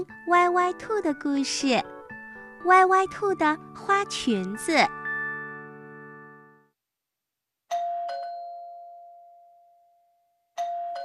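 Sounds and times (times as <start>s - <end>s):
speech: 0.0s - 2.0s, 2.6s - 5.0s
electronic ding-dong doorbell chiming: 7.7s - 11.0s.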